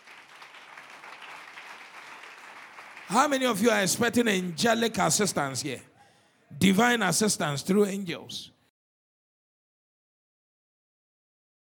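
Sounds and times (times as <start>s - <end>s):
audience clapping hands: 0.0s - 5.2s
speech: 3.1s - 5.9s, 6.6s - 8.5s.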